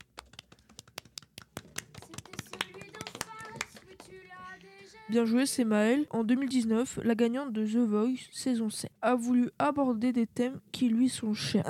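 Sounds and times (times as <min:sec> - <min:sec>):
small group clapping for a singer: 0:00.0 - 0:05.1
speech: 0:04.9 - 0:11.6.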